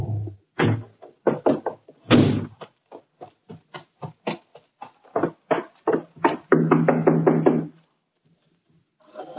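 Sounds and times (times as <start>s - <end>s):
loud knocking on a door: 0.6s - 2.6s, 5.2s - 7.8s.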